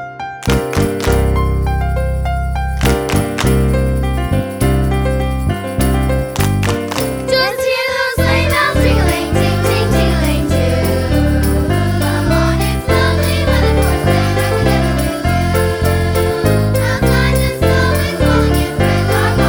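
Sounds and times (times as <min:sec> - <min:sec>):
bouncy sleigh ride music: 0:00.4 - 0:01.6, 0:02.7 - 0:19.4
choir singing: 0:06.6 - 0:19.4.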